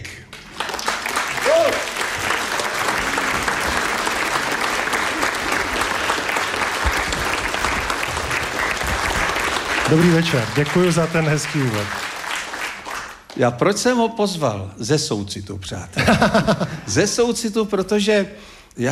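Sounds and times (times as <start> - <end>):
large audience applauding: 0.0 - 13.4
brief audience cheer: 1.3 - 2.0
speech: 9.9 - 12.1, 13.4 - 18.9
laughter: 15.9 - 17.0.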